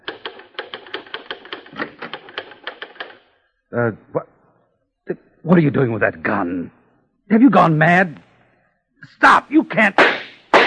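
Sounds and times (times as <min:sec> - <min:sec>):
typewriter keystrokes: 0:00.0 - 0:03.2
speech: 0:03.7 - 0:04.3, 0:05.1 - 0:08.2, 0:09.0 - 0:10.2.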